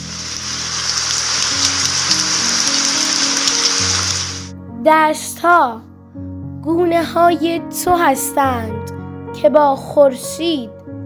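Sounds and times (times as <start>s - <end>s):
steady dense rain: 0.0s - 4.5s
soft sustained low musical tones: 0.0s - 9.5s
speech: 4.8s - 10.8s.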